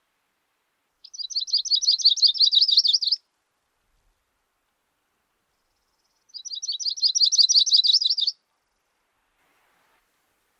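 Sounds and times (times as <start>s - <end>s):
bird twittering: 1.0s - 3.2s, 6.3s - 8.4s.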